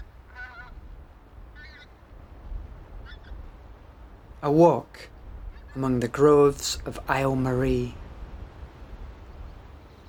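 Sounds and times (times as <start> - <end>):
departing geese honking at Sleach in Wester Ross in autumn: 0.0 - 0.8, 1.6 - 1.9
speech: 4.4 - 5.1, 5.8 - 8.0.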